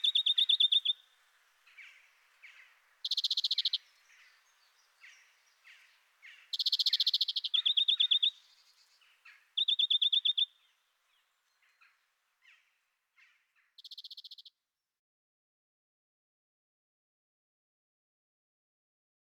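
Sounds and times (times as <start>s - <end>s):
European greenfinch song of bright and buzzy trills with twittering: 0.0s - 14.6s.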